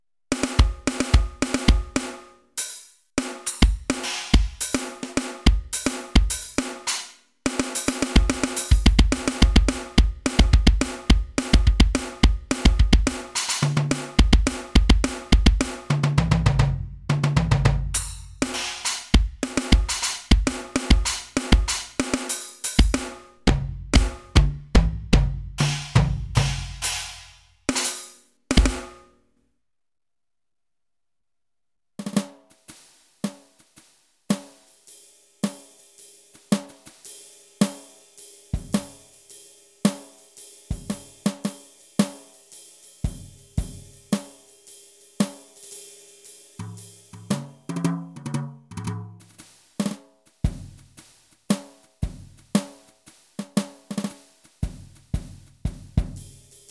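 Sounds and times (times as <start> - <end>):
Roland SPD 20 PRO electronic drum kits: 0.3 - 29.0, 36.4 - 39.2, 40.7 - 42.3, 43.0 - 44.5, 46.6 - 47.9, 49.2 - 56.6.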